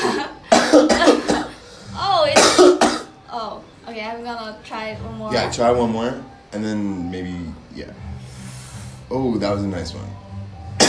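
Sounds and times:
person coughing after a first puff of marijuana: 0.0 - 1.6, 2.4 - 3.1
speech: 4.2 - 8.1, 9.1 - 10.2
breathy exhaling after a puff of marijuana: 8.1 - 9.1.

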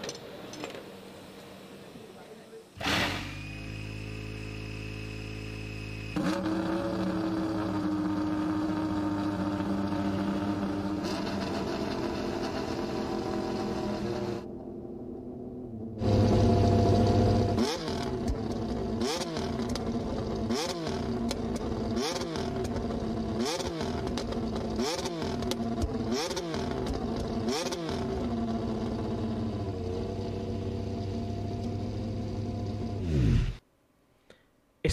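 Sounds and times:
Formula 1 V6 turbo engine revving: 2.8 - 14.4, 16.0 - 33.6.

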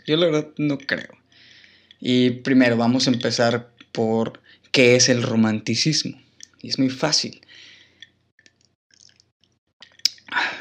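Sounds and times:
speech: 0.0 - 1.2, 2.0 - 7.7
person sipping whisky with wet mouth sounds: 7.7 - 10.5
person swallowing whisky: 9.8 - 10.4.

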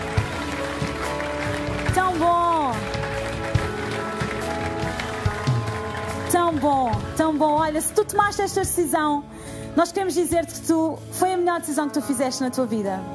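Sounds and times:
crowd applauding in a large room: 0.0 - 8.1
speech: 6.5 - 13.1.

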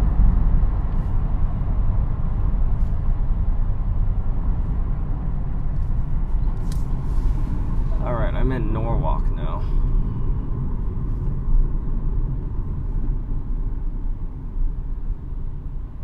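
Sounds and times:
dense roar of freeway traffic: 0.0 - 16.0
higher hiss of a passing vehicle: 6.8 - 8.3.

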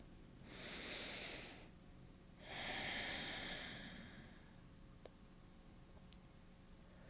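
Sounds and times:
deep breath: 0.4 - 1.7, 2.4 - 4.6.

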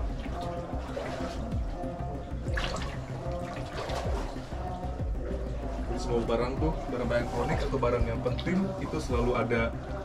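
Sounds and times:
tidal floodwater from the high sea tide sloshing and trickling through a house: 0.0 - 10.0
speech: 6.1 - 10.0.

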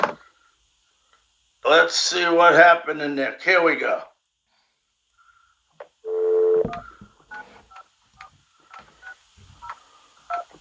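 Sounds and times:
speech: 1.7 - 4.1
long steady phone dial tone: 6.1 - 7.5.

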